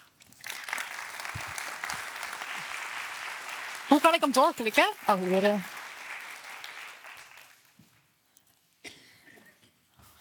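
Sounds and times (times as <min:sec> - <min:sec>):
audience applause: 0:00.3 - 0:07.8
speech: 0:03.9 - 0:05.7.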